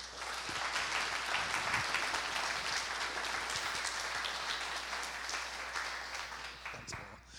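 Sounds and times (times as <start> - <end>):
church audience applause welcoming a speaker: 0.0 - 7.2.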